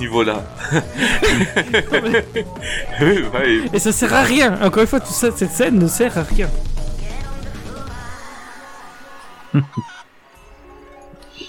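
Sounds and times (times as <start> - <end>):
speech: 0.0 - 6.8, 9.5 - 9.9
laughter: 0.6 - 4.1, 9.4 - 10.1
chicken clucking: 9.4 - 10.1.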